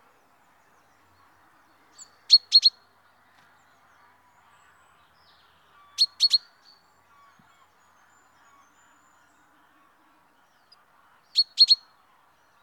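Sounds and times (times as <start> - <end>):
common chaffinch Fringilla coelebs calling with short clipped notes: 2.3 - 2.8, 6.0 - 6.4, 11.4 - 11.8.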